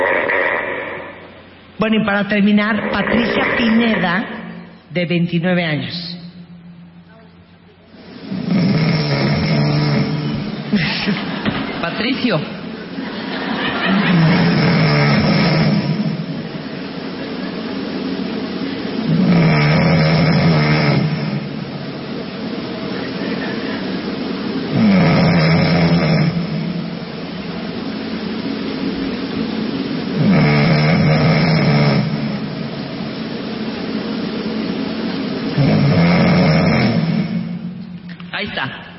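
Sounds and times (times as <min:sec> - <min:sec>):
constant hiss: 0:00.0 - 0:38.9
speech: 0:01.8 - 0:06.2, 0:10.7 - 0:11.3, 0:12.0 - 0:12.6
very intense human snoring: 0:08.3 - 0:10.5, 0:14.1 - 0:16.2, 0:19.1 - 0:21.5, 0:24.7 - 0:26.6, 0:30.1 - 0:32.4, 0:35.6 - 0:37.5
laughter: 0:10.7 - 0:14.8, 0:22.9 - 0:24.2.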